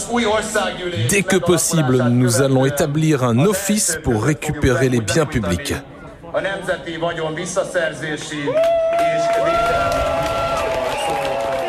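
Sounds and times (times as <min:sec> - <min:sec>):
speech: 0:00.1 - 0:10.0
crowd cheering and shouting: 0:08.5 - 0:11.6.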